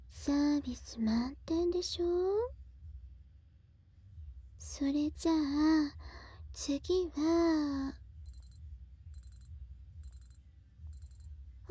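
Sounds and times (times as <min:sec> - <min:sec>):
faint low hum: 0:00.0 - 0:11.6
speech: 0:00.2 - 0:02.6, 0:04.6 - 0:08.0
electronic alarm clock beeping: 0:08.2 - 0:11.3.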